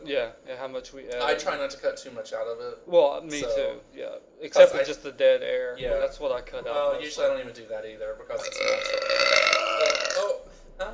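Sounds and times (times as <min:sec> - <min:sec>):
speech: 0:00.1 - 0:09.4
drawn-out burp: 0:08.4 - 0:10.3.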